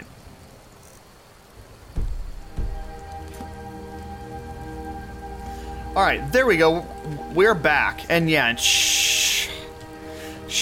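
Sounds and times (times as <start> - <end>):
faint sustained humming tones: 0.0 - 10.5
steady rain pattering: 0.0 - 10.5
dull low thumps: 1.9 - 5.3
speech: 6.0 - 9.5.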